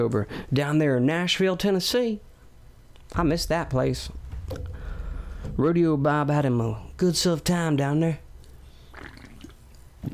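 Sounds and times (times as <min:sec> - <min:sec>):
speech: 0:00.0 - 0:02.3, 0:03.1 - 0:04.8, 0:05.5 - 0:08.2
slurp sipping a black cherry seltzer: 0:08.4 - 0:10.1
soft swallowing gulps: 0:08.4 - 0:10.1.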